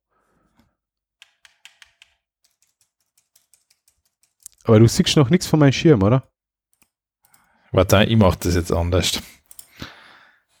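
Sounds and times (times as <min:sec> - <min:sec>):
computer keyboard up and down arrow keys clicking: 0:01.2 - 0:04.6
speech: 0:04.7 - 0:06.3, 0:07.8 - 0:09.4
soft breathy exhale: 0:09.7 - 0:10.5.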